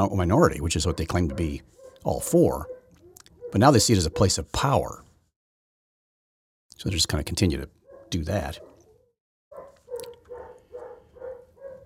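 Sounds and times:
speech: 0.0 - 2.7, 3.5 - 5.1, 6.8 - 8.7
dog barking: 0.8 - 4.6, 7.9 - 11.8.

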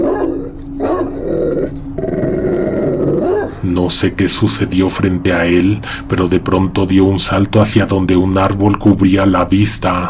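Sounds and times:
dog growling and barking: 0.0 - 3.6
speech: 3.6 - 10.0.

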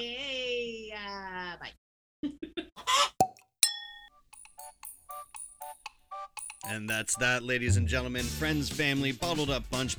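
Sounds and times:
chicken squawking: 2.8 - 3.2
bright bell-like ding: 3.6 - 7.2
speech: 6.7 - 9.9.

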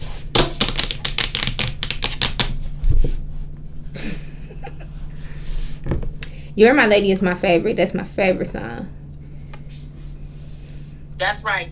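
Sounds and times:
computer keyboard typing: 0.4 - 2.6
speech: 6.6 - 9.0, 11.2 - 11.7.

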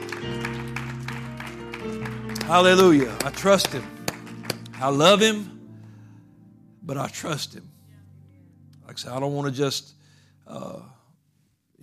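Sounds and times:
crowd clapping in a steady rhythm: 0.0 - 5.4
sustained organ-like chords: 0.0 - 11.0
speech: 2.5 - 4.0, 4.8 - 5.5, 6.8 - 7.7, 8.9 - 11.0.

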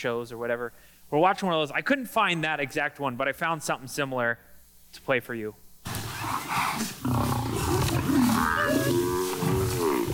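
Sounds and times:
speech: 0.0 - 7.3
lion roaring and growling while attacking a buffalo: 5.9 - 10.1
buffalo bellowing: 6.0 - 10.1.

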